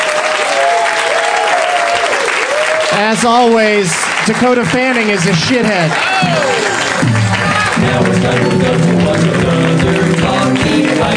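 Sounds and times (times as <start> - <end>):
faint audience whistles and cheers: 0.0 - 3.1, 5.9 - 7.8
audience clapping in sustained applause: 0.0 - 11.1
speech: 3.0 - 7.2, 7.8 - 10.0.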